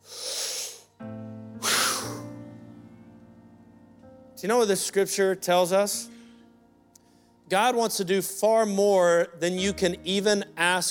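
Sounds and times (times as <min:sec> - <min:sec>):
deep breath: 0:00.0 - 0:00.9, 0:01.6 - 0:02.2, 0:06.1 - 0:07.4
speech: 0:04.4 - 0:06.1, 0:07.5 - 0:10.9.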